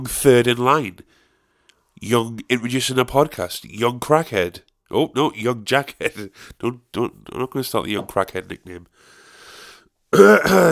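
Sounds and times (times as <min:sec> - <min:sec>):
speech: 0:00.0 - 0:01.2, 0:02.0 - 0:09.2, 0:10.1 - 0:10.7
loud rough throat-clearing cough: 0:10.2 - 0:10.7.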